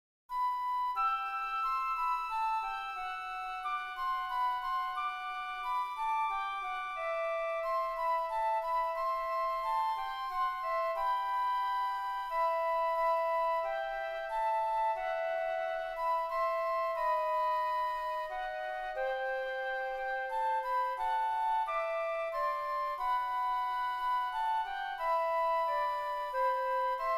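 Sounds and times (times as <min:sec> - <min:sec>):
flutes: 0:00.3 - 0:27.1.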